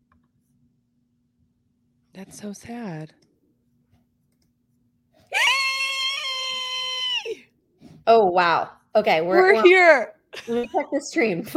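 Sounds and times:
speech: 2.2 - 3.2, 8.1 - 11.5
single loud sustained human scream: 5.3 - 7.4.

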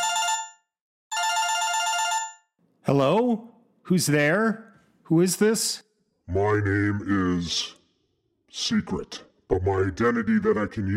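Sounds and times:
telephone bell ringing with a bright rattling metallic tone: 0.0 - 2.6
speech: 2.9 - 7.8, 8.5 - 10.9.

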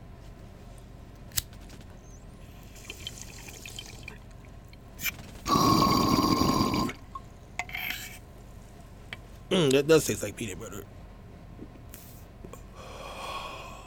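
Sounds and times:
bong bubbling with gurgling water: 2.6 - 4.4, 5.5 - 7.2
speech: 9.6 - 11.0.

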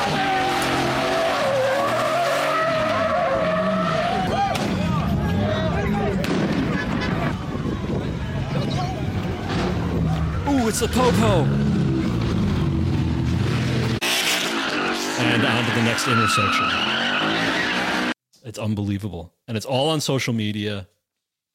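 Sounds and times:
tires squealing in long sliding screeches: 0.0 - 7.8, 8.6 - 18.2
car engines roaring at a street takeover: 0.0 - 18.2
speech: 10.7 - 11.7, 15.3 - 17.0, 18.5 - 21.0.

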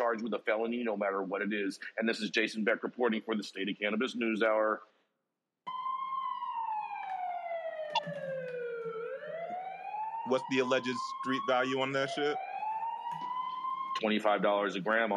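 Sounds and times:
speech: 0.1 - 4.9, 10.3 - 12.5, 14.0 - 15.1
police car siren wailing: 5.7 - 15.1.

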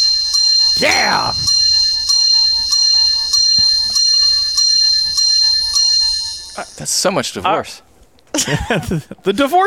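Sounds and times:
bells ringing: 0.0 - 7.1
speech: 0.8 - 1.6, 6.9 - 9.6.

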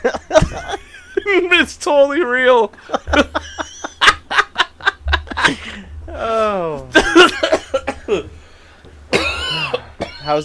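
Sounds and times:
laughter: 0.0 - 1.7, 2.5 - 8.4
speech: 1.8 - 3.2
rapid coughs: 7.0 - 10.4.

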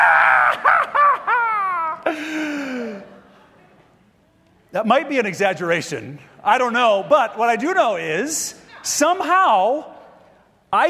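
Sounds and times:
person screaming in acted panic: 0.0 - 2.0
laughter: 0.5 - 3.7
speech: 4.7 - 9.9.

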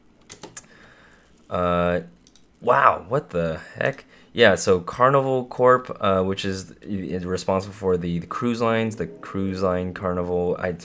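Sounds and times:
typing on a computer keyboard: 0.1 - 1.4
speech: 1.5 - 10.8.

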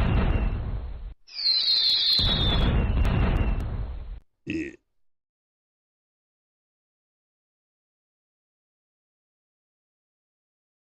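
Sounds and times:
fireworks exploding outside: 0.0 - 4.2
sustained crackling firework booms: 0.0 - 4.2
high firework whistle gliding downward: 1.3 - 3.7.

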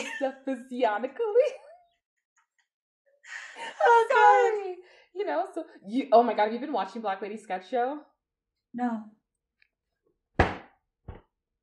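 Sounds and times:
speech: 0.2 - 1.6, 3.3 - 8.1, 8.7 - 9.2
woman's hand slamming on a desk in frustration: 10.4 - 11.2.

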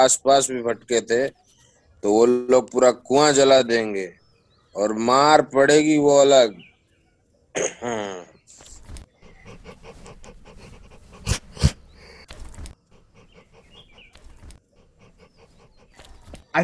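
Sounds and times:
speech: 0.0 - 1.4, 2.0 - 4.2, 4.8 - 6.7, 7.6 - 8.7
dog whining: 8.7 - 16.5.

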